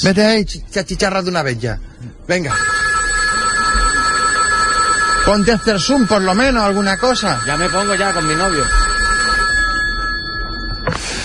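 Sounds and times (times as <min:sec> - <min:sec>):
speech: 0:00.0 - 0:02.8, 0:05.3 - 0:08.9
telephone ring tone on a call to a citizen helpline in Barcelona: 0:02.5 - 0:11.0.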